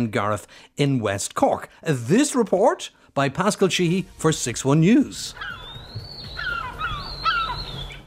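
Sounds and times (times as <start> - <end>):
speech: 0.0 - 5.6
white-tailed eagle chicks giving thin descending calls on Garnish Island in West Cork: 5.2 - 8.0.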